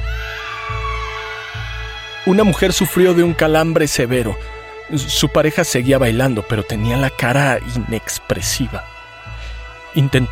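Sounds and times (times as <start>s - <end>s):
loud shrill strained scream: 0.0s - 3.9s
speech: 2.3s - 9.0s, 10.0s - 10.2s.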